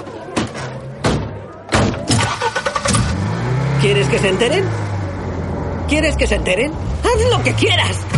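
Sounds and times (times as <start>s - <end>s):
car engine revving as the driver floors the accelerator: 2.2s - 8.1s
speech: 3.8s - 4.8s, 5.9s - 8.1s.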